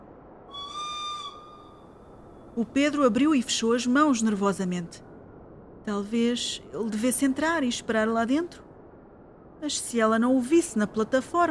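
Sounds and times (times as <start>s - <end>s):
faint hiss: 0.0s - 11.4s
short warning whistle before doors close: 0.5s - 1.9s
speech: 2.6s - 5.1s, 5.8s - 8.6s, 9.6s - 11.4s.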